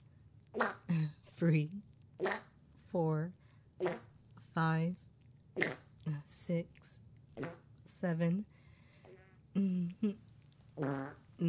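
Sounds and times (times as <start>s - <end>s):
farts: 0.6s - 0.9s, 2.2s - 2.5s, 3.8s - 4.1s, 5.6s - 5.9s, 7.4s - 7.7s, 10.8s - 11.4s
speech: 0.6s - 5.0s, 5.6s - 6.8s, 7.4s - 8.5s, 9.6s - 10.2s, 10.8s - 11.4s.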